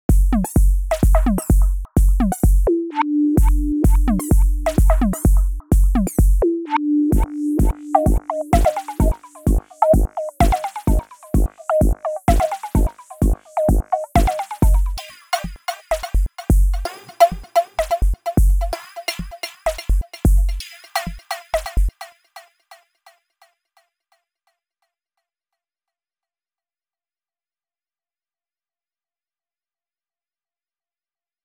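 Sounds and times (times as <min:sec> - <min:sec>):
electronic music: 0:00.3 - 0:22.5.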